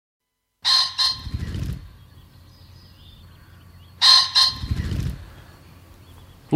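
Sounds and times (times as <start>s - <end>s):
common pheasant giving a harsh two-note crow: 0.6s - 6.4s
common pheasant muffled wing-whirring: 1.0s - 3.6s, 4.4s - 5.6s.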